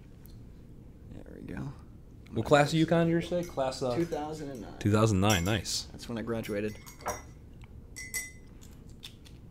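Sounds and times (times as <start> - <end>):
low murmur of room noise: 0.0 - 9.5
speech: 2.3 - 7.2
glasses clinking in a toast: 3.2 - 8.5.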